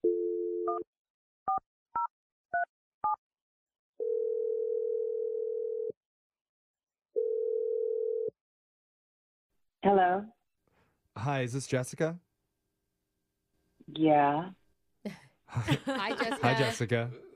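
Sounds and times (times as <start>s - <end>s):
telephone dial tone: 0.0s - 0.8s, 4.0s - 6.0s, 7.2s - 8.4s
speech: 0.7s - 1.7s, 9.8s - 10.4s, 11.2s - 12.3s, 13.9s - 17.3s
telephone ringing tones: 4.0s - 6.0s, 7.2s - 8.3s
laughter: 15.5s - 17.1s.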